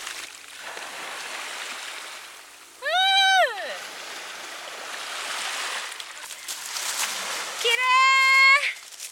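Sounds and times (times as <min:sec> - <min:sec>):
gentle calm waves washing over a gravel and pebble beach: 0:00.0 - 0:02.5, 0:03.7 - 0:09.1.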